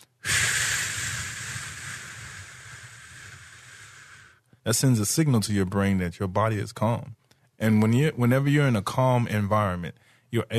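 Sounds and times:
long slow exhale: 0:00.0 - 0:04.4
speech: 0:04.7 - 0:10.5.

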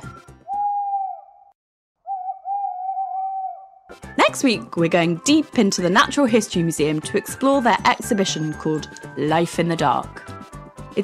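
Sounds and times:
owl hooting: 0:00.5 - 0:03.9
speech: 0:04.2 - 0:10.3.

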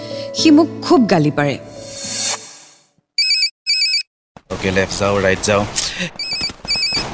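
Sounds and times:
speech: 0:00.4 - 0:01.7, 0:04.6 - 0:06.3
mobile phone bright electronic ringtone with incoming call: 0:03.2 - 0:04.1.

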